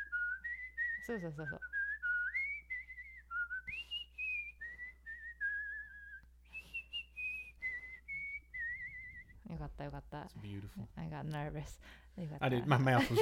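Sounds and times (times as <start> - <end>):
person whistling a tune: 0.0 - 9.5
speech: 1.0 - 1.7, 9.8 - 13.2.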